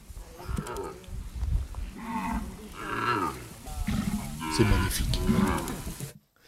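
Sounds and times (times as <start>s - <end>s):
zebu cattle mooing: 2.0s - 5.9s
speech: 4.6s - 5.8s.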